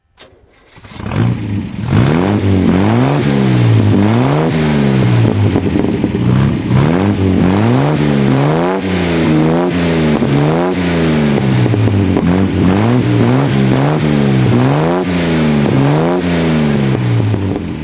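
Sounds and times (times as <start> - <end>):
Healey 3000 MkII engine throttle: 0.3 - 17.8.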